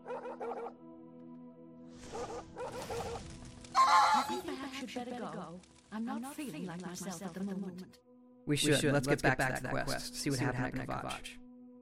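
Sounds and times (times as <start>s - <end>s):
puppy barking in sharp bursts: 0.0s - 0.7s, 2.1s - 3.2s
speech: 4.4s - 11.4s.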